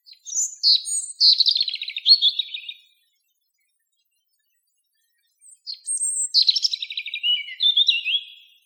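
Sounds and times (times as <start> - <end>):
male robin singing: 0.0 - 3.0, 5.4 - 8.6.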